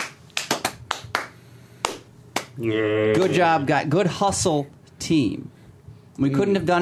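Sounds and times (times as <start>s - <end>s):
few people clapping: 0.0s - 2.6s
speech: 2.6s - 5.6s, 6.2s - 6.8s.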